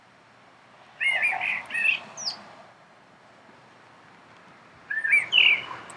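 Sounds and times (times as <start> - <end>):
common blackbird singing: 1.0 - 2.4, 4.9 - 5.9.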